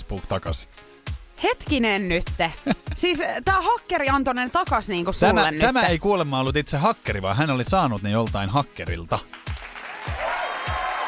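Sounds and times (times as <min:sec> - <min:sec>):
speech: 0:00.1 - 0:09.4
laughter: 0:02.4 - 0:03.1, 0:05.2 - 0:05.8
crowd applause: 0:09.3 - 0:11.0.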